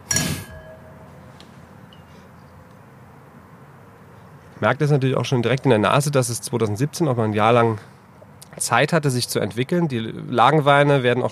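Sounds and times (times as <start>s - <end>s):
two wine glasses clinking in a toast: 0.0s - 1.2s
speech: 4.6s - 7.9s, 8.6s - 11.3s.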